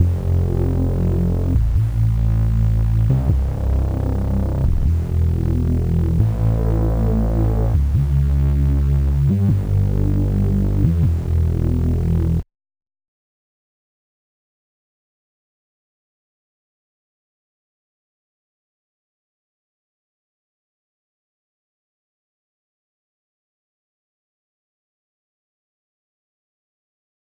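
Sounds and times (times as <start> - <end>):
bass: 0.0 - 12.4.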